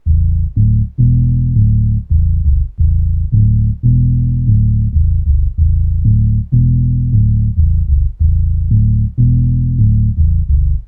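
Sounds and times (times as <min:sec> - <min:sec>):
low bass: 0:00.0 - 0:10.8.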